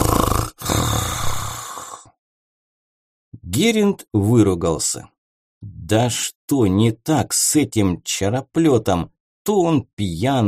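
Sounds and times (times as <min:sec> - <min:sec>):
loud snoring: 0:00.0 - 0:02.1
speech: 0:03.6 - 0:10.4.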